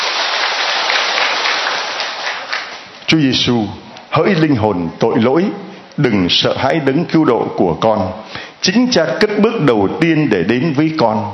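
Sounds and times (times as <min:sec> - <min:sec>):
crowd clapping: 0:00.0 - 0:03.0
speech: 0:03.1 - 0:11.3.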